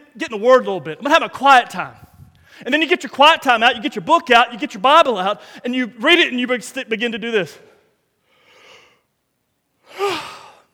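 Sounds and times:
speech: 0.2s - 2.0s, 2.6s - 7.7s
person performing an exaggerated yawn: 9.9s - 10.7s.

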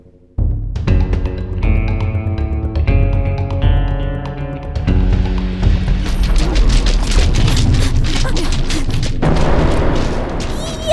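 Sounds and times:
dramatic musical score: 0.0s - 10.9s
loud explosion of a cannon being destroyed: 9.2s - 10.9s.

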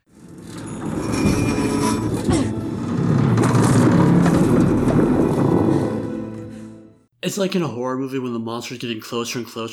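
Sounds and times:
boat hull screeching and groaning during a hurricane: 0.1s - 6.8s
speech: 7.3s - 9.7s.

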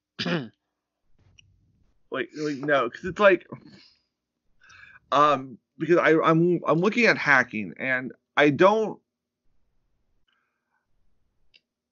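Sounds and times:
person clearing throat: 0.2s - 0.6s
speech: 0.2s - 0.6s, 2.1s - 4.0s, 5.1s - 9.0s.

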